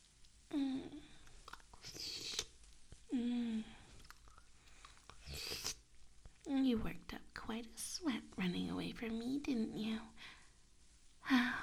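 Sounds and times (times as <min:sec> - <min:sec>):
speech: 0:00.5 - 0:01.0, 0:06.7 - 0:10.4
wet chewing and crunching of food: 0:01.2 - 0:03.0, 0:03.9 - 0:05.9.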